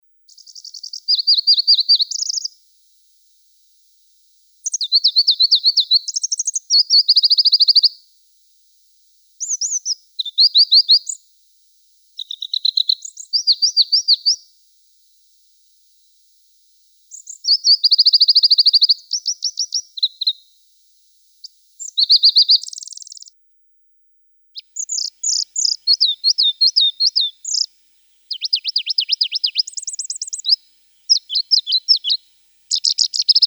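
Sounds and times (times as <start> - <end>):
Pallas's leaf warbler singing: 0.3 - 2.6, 4.6 - 7.9, 9.4 - 11.2, 12.2 - 14.4, 17.1 - 20.4, 21.4 - 23.3, 24.6 - 33.4.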